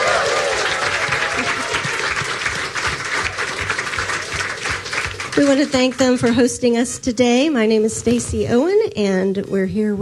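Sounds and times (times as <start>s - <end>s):
room full of people applauding: 0.0s - 6.6s
speech: 5.4s - 10.0s.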